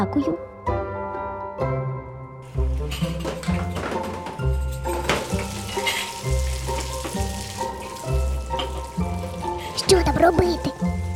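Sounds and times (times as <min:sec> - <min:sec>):
speech: 0:00.0 - 0:00.5, 0:01.6 - 0:01.9
rhythmic music: 0:00.7 - 0:11.1
running water splashing as dishes are washed: 0:02.4 - 0:11.1.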